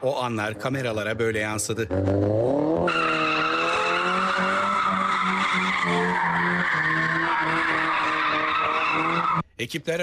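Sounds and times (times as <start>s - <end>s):
speech: 0.0s - 3.5s, 5.8s - 10.0s
car tires squealing as cars drift on a street in Ankara: 2.1s - 9.4s.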